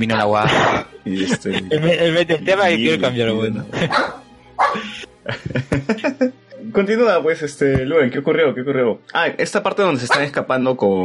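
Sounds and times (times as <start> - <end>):
speech: 0.0 - 11.0
laughter: 0.4 - 6.4
dog barking and yipping: 3.8 - 4.9, 10.1 - 10.3.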